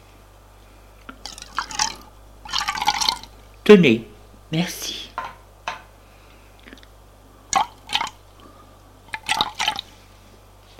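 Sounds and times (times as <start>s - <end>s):
drinks poured from a bottle into two glasses on a coffee table: 1.2s - 3.3s, 7.5s - 8.2s, 9.1s - 9.9s
speech: 3.7s - 5.0s.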